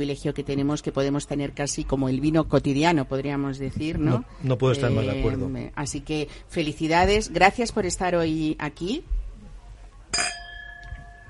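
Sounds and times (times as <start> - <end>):
speech: 0.0 - 9.2
two wine glasses clinking in a toast: 10.1 - 11.2.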